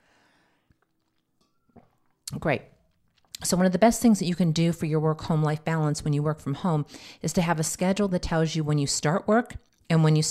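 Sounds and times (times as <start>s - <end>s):
person sipping tea: 0.4s - 2.3s
speech: 2.3s - 2.8s, 3.4s - 10.2s.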